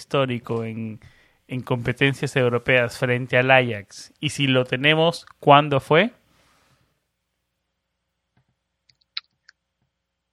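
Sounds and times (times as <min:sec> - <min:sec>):
speech: 0:00.0 - 0:06.2
soft hiss: 0:00.1 - 0:07.0.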